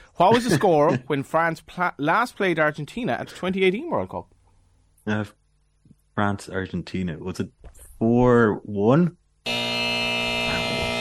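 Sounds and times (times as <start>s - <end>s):
speech: 0.2s - 4.4s, 5.0s - 5.4s, 6.2s - 9.8s
loud harsh game-show wrong-answer buzzer: 9.4s - 11.0s.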